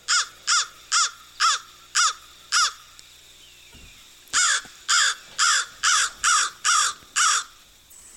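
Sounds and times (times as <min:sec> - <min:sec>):
American crow cawing: 0:00.1 - 0:02.9, 0:04.3 - 0:07.6.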